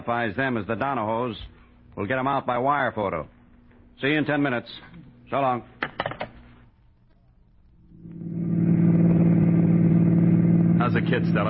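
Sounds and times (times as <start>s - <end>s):
speech: 0.0s - 3.4s, 4.0s - 5.7s, 10.8s - 11.4s
car engine while driving: 7.9s - 11.4s.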